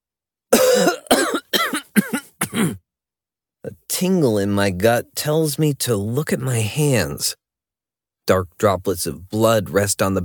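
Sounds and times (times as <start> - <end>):
person coughing harshly: 0.5 - 2.8
speech: 4.0 - 7.4, 8.3 - 10.2.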